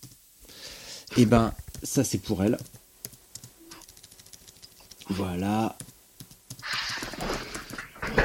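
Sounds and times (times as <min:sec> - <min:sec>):
rapid typing on a computer keyboard: 0:00.0 - 0:00.2, 0:02.6 - 0:07.8
speech: 0:01.2 - 0:02.8.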